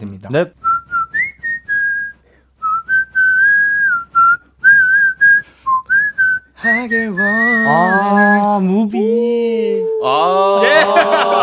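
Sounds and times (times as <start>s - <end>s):
speech: 0.0s - 0.6s, 6.6s - 11.4s
person whistling the melody of a song: 0.6s - 8.5s
laughter: 10.2s - 11.4s.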